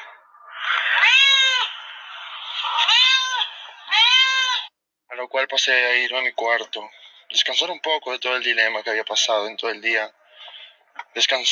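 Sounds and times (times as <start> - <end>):
cat meowing as it greets its owner arriving home: 0.6 - 4.7
speech: 5.3 - 10.2, 11.0 - 11.5.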